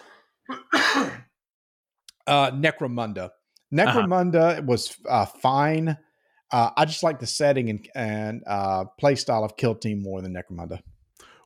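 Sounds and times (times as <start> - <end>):
person coughing: 0.5 - 1.4
speech: 2.3 - 10.9.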